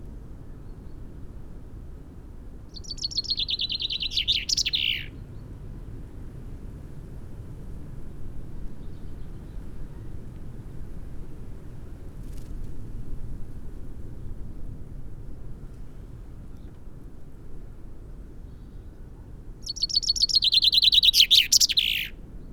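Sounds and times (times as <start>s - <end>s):
common chaffinch Fringilla coelebs song: 2.7s - 5.2s, 19.6s - 22.2s.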